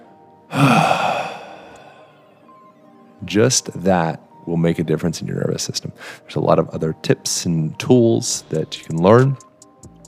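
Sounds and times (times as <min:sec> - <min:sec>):
person exhaling in a guided breathing exercise: 0:00.5 - 0:02.3
speech: 0:03.2 - 0:09.5.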